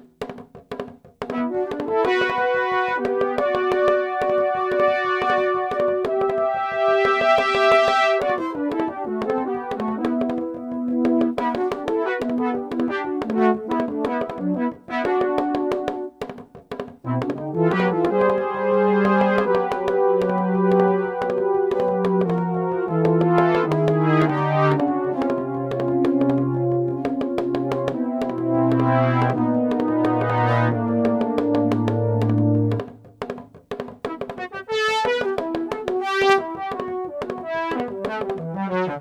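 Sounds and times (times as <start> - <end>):
soft synth brass: 1.3 - 16.1, 17.1 - 32.9, 34.4 - 38.9.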